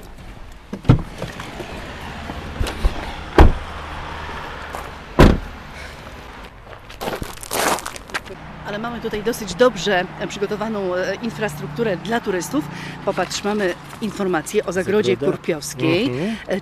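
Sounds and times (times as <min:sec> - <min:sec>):
car doors opening and slamming shut: 0:00.7 - 0:01.3, 0:02.5 - 0:03.7, 0:05.1 - 0:05.6
speech: 0:08.8 - 0:16.6.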